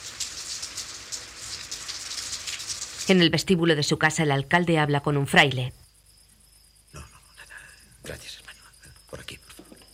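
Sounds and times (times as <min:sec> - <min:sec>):
steady rain falling at night: 0:00.0 - 0:03.4
speech: 0:03.1 - 0:05.8.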